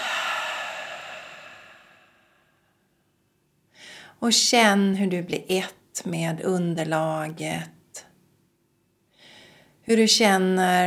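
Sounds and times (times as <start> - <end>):
person breathing in: 0.0 - 2.6
slow breathy exhale through the mouth during a guided breathing exercise: 0.0 - 2.6
speech: 4.2 - 7.8, 9.9 - 10.8.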